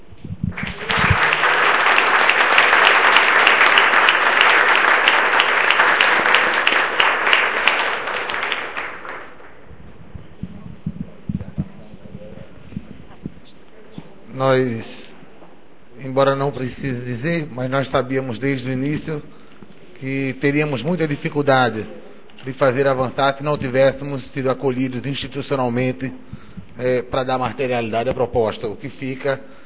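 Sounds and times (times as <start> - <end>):
scattered claps: 0.4 - 13.4
crowd applauding: 0.5 - 9.8
speech: 14.6 - 14.9, 16.2 - 19.4, 20.0 - 29.6.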